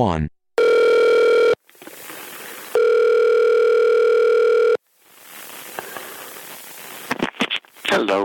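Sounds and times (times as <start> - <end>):
speech: 0.0 - 0.4
long steady electronic phone ring tones: 0.6 - 1.6, 2.8 - 4.8
hissy phone line noise: 1.6 - 2.8, 4.9 - 7.9
crackling static: 1.6 - 3.2, 4.3 - 8.2.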